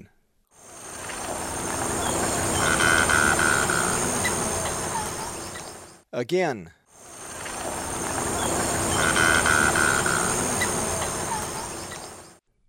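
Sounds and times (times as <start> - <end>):
anhinga calling in Ecuador: 0.6 - 6.0, 7.0 - 12.3.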